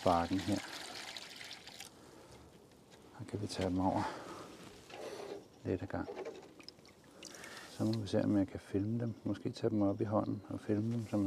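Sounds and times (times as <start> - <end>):
speech: 0.0 - 0.9, 3.2 - 4.2, 5.6 - 6.2, 7.8 - 11.2
water poured into a tub for small fish: 0.0 - 2.0.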